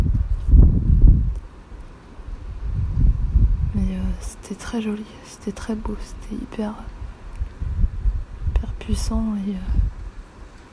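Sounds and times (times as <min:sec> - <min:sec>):
gust of cold wind buffeting the microphone on a very cold day: 0:00.0 - 0:10.7
speech: 0:04.4 - 0:07.0, 0:08.8 - 0:09.8.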